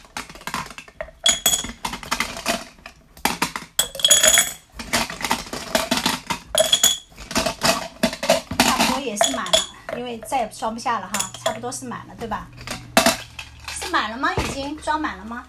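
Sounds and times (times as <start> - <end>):
glass marbles dropped into a container: 0.2 - 2.6, 3.4 - 9.9, 11.1 - 11.6, 12.6 - 14.0
speech: 10.1 - 12.6, 13.9 - 15.4.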